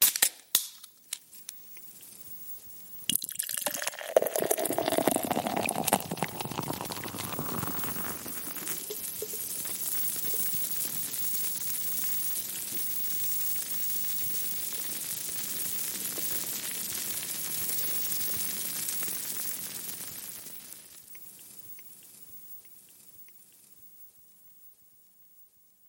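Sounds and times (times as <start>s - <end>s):
beer fizzing: 3.0s - 10.6s.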